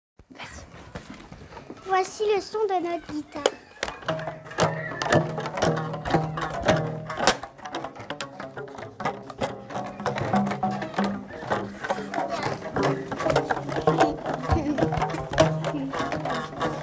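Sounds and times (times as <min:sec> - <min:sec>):
guitar: 0:01.0 - 0:16.8.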